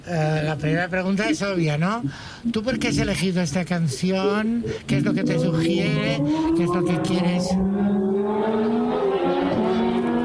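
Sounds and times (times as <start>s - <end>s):
speech: 0.1s - 8.8s
motorcycle passing by outside: 7.6s - 10.2s.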